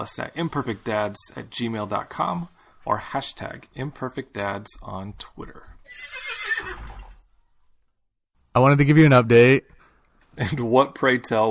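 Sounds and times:
speech: 0:00.0 - 0:06.8, 0:08.5 - 0:09.7, 0:10.4 - 0:11.4
horse whinny: 0:05.8 - 0:07.3.

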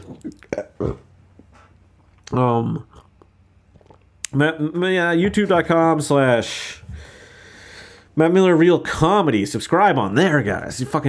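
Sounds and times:
speech: 0:00.1 - 0:01.1, 0:02.3 - 0:03.0, 0:04.3 - 0:07.0, 0:08.2 - 0:11.0
loud drawn-out belch: 0:00.3 - 0:01.2.

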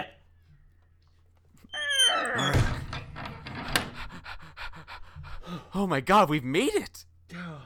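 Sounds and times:
heavy trap door slamming shut: 0:02.3 - 0:04.1
loud rapid panting and gasping breaths: 0:03.5 - 0:05.8
speech: 0:05.8 - 0:07.0.

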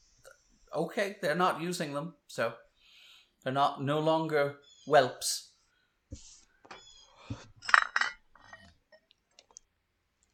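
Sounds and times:
speech: 0:00.8 - 0:02.6, 0:03.4 - 0:05.5, 0:06.1 - 0:06.3
dishes and cutlery clinking during washing-up: 0:07.6 - 0:08.7.

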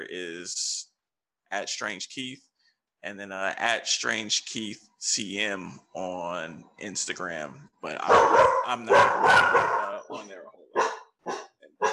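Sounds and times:
speech: 0:00.1 - 0:00.8, 0:01.5 - 0:10.6
dog barking in sharp bursts: 0:07.9 - 0:11.9.

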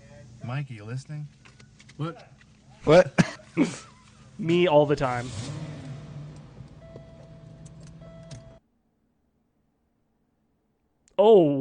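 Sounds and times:
speech: 0:00.5 - 0:01.4, 0:02.0 - 0:05.5, 0:11.2 - 0:11.5
car engine hum: 0:04.0 - 0:08.6
car rolling over a low cement parking divider: 0:04.9 - 0:08.6.

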